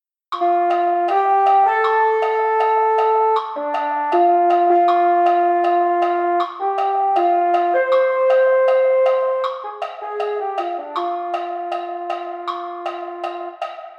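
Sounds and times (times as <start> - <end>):
mellophone: 0.4 - 13.6.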